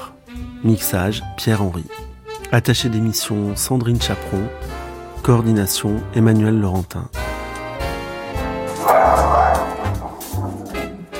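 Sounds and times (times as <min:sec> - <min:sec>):
speech: 0:00.6 - 0:07.2
dog barking and yipping: 0:08.8 - 0:11.1.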